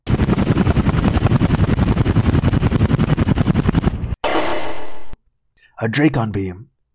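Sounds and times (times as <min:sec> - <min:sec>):
helicopter rotor blades chopping: 0:00.1 - 0:05.2
speech: 0:05.8 - 0:06.7.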